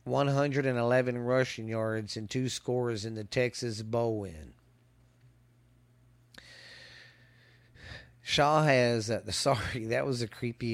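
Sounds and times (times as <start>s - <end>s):
low steady hum: 0.0s - 10.7s
speech: 0.1s - 4.6s, 8.3s - 10.7s
heavy breathing into the microphone: 6.4s - 8.2s.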